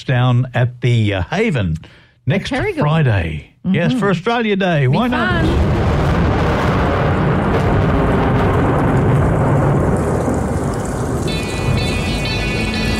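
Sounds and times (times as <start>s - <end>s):
speech: 0.0s - 5.8s
deep rolling thunder sound effect: 5.0s - 12.9s
steady dense rain hiss sound effect: 5.2s - 12.9s
thin high musical tone: 11.3s - 12.9s.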